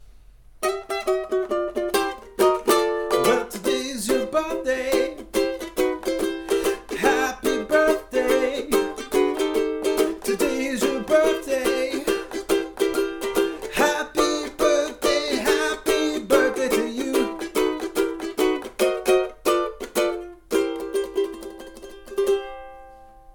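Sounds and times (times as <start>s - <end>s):
ukulele playing a birthday song: 0.6s - 23.3s.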